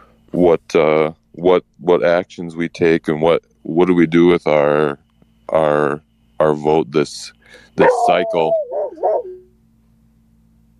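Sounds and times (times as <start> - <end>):
speech: 0.4 - 8.6
dog barking: 7.8 - 9.4
low hum: 7.8 - 9.6.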